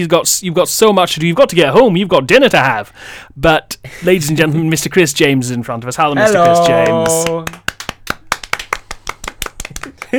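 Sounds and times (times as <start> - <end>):
speech: 0.0 - 7.6
small group of people clapping to welcome a guest: 6.2 - 10.1
laughter: 9.9 - 10.1.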